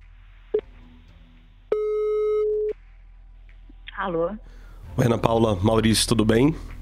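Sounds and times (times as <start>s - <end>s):
electronic telephone ringback tone while placing a call: 1.7s - 2.7s
speech: 4.0s - 6.7s.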